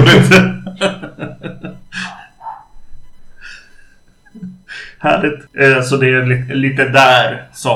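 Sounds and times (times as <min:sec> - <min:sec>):
laughter: 0:00.0 - 0:02.2
speech: 0:00.3 - 0:01.0, 0:05.0 - 0:07.7
dog barking outside: 0:02.0 - 0:02.7.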